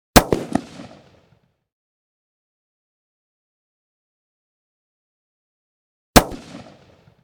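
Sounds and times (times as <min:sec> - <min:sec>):
.308 rifle shot blast: 0:00.2 - 0:01.2, 0:06.2 - 0:07.2.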